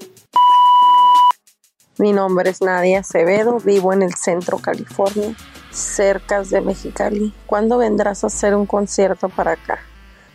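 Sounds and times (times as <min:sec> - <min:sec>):
electronic voicemail beep tone: 0:00.4 - 0:01.4
speech: 0:02.0 - 0:09.9.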